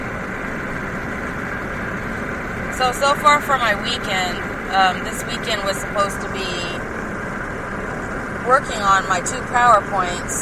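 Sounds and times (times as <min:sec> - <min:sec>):
car engine droning while driving on a dark back road at night: 0:00.0 - 0:10.4
speech: 0:02.8 - 0:06.9, 0:08.5 - 0:10.4.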